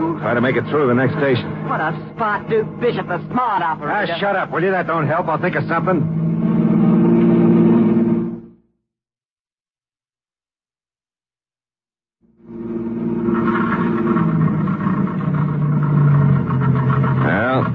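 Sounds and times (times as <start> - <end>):
car engine running and dying out from lack of gas: 0.0 - 8.7, 12.2 - 17.7
speech: 0.3 - 6.2.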